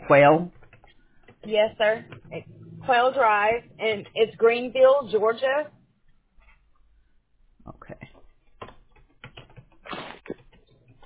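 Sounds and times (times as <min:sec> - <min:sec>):
speech: 0:00.1 - 0:00.6, 0:01.4 - 0:05.8, 0:07.9 - 0:08.2
typing on a computer keyboard: 0:00.5 - 0:02.4, 0:08.6 - 0:11.0.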